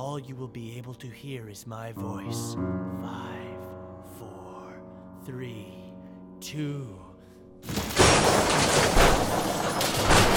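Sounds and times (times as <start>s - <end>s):
speech: 0.2s - 4.4s, 5.3s - 5.8s, 6.4s - 7.0s
crumbling shattering debris: 7.6s - 10.3s
tank crashing through a wall: 7.6s - 10.3s.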